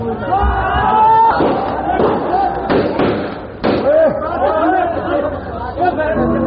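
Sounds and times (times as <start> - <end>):
noisy crowd chattering and shouting: 0.0 - 6.4
celebratory gunfire bursts: 1.4 - 3.9.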